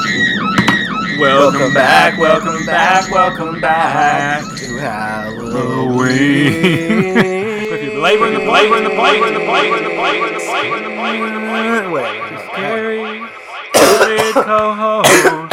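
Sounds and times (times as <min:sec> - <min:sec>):
steady tonal humming background: 0:00.0 - 0:15.5
speech: 0:01.2 - 0:07.4, 0:08.0 - 0:13.3, 0:14.0 - 0:15.4
laughter: 0:03.7 - 0:13.2
person clearing their throat: 0:13.8 - 0:15.5
person coughing on pumpkin dust: 0:13.8 - 0:15.5.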